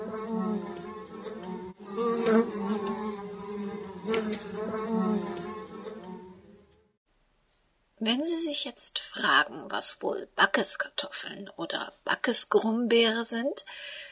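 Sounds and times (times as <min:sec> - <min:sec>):
wasps buzzing: 0:00.0 - 0:06.8
speech: 0:08.6 - 0:14.1.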